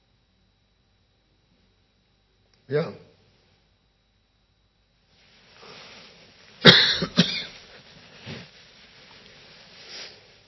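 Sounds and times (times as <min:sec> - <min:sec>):
speech: 0:02.7 - 0:03.1
quiet breathing: 0:05.0 - 0:06.6, 0:07.5 - 0:10.4
person coughing from a tickle in the throat: 0:06.6 - 0:07.6.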